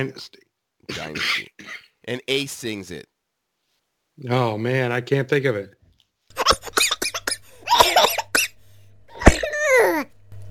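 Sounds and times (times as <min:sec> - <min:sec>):
speech: 0:00.0 - 0:03.1, 0:04.2 - 0:05.8
man coughing hard in harsh bursts: 0:00.9 - 0:02.0, 0:06.4 - 0:09.7.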